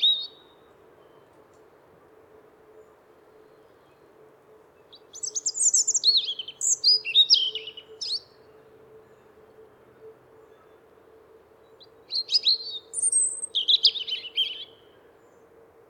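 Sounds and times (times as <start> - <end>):
European robin song: 0.0 - 1.4, 4.8 - 8.5, 11.8 - 15.4.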